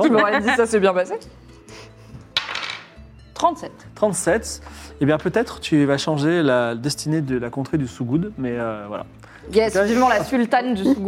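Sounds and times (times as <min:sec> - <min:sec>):
speech: 0:00.0 - 0:01.4, 0:03.4 - 0:11.0
dice rolled during a tabletop game: 0:02.4 - 0:02.9.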